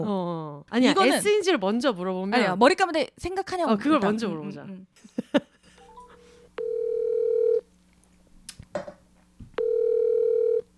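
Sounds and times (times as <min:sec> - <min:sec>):
speech: 0:00.0 - 0:05.4
long steady telephone line tones while placing a call: 0:05.8 - 0:07.7, 0:09.6 - 0:10.7
telephone dialing beeps while placing a call: 0:09.6 - 0:10.6.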